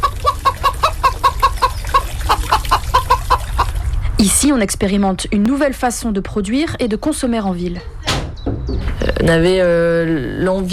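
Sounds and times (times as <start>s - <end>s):
chickens clucking: 0.0s - 4.2s, 7.6s - 9.7s
speech: 4.2s - 8.0s, 9.2s - 10.7s.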